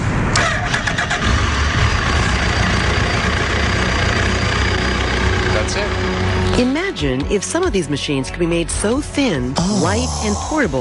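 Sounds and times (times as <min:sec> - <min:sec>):
motorbike engine cranking, firing up and idling: 0:00.3 - 0:07.0
speech: 0:06.6 - 0:10.7.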